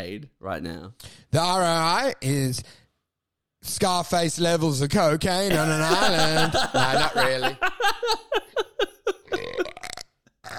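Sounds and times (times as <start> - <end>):
speech: 0.0 - 2.8, 3.6 - 8.6
laughter: 5.5 - 9.8
croaky burps: 9.2 - 10.5
rough belch: 9.4 - 10.5.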